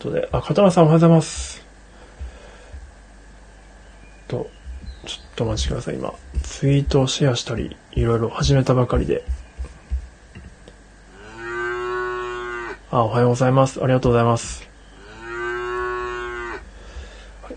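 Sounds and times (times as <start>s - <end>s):
speech: 0.0s - 1.6s, 4.3s - 9.4s, 12.9s - 14.7s
faint noise: 0.0s - 17.5s
low thumps and knocks: 4.6s - 10.6s
long low cow moo: 11.1s - 12.9s, 14.9s - 16.7s.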